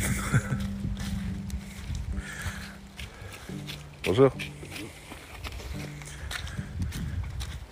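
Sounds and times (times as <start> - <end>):
laughter: 0.0 - 0.8
runner's footsteps slapping and squelching through mud: 0.0 - 7.7
speech: 0.3 - 0.6, 4.0 - 4.6.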